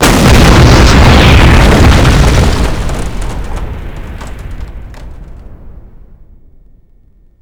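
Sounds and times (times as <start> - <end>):
train explosion: 0.0 - 6.2.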